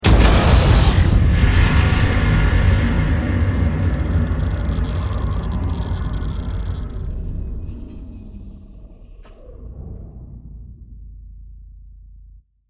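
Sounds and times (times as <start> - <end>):
cinematic sound effect: 0.0 - 12.4.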